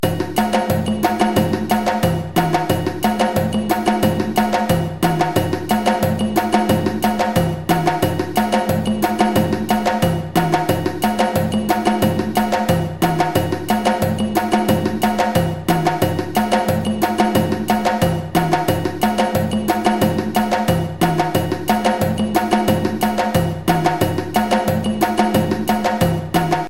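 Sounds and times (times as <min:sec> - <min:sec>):
djembe groove: 0:00.0 - 0:26.6.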